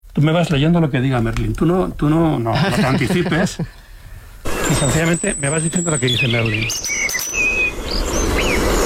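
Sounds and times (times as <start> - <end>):
speech: 0.2 - 3.8, 4.7 - 7.0
laughter: 2.4 - 3.8
European robin singing: 3.4 - 8.8.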